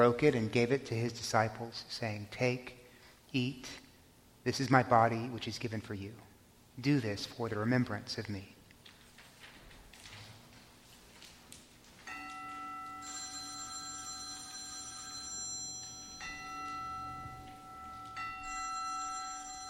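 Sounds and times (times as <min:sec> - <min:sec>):
speech: 0:00.0 - 0:03.8, 0:04.4 - 0:08.6
mobile phone electronic ringtone melody during a church communion service: 0:12.1 - 0:19.6.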